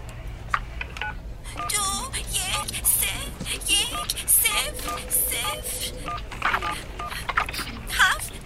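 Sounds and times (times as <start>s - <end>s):
telephone keypad dialing tones: 1.0s - 1.9s, 3.8s - 7.2s
people talking: 1.4s - 8.4s.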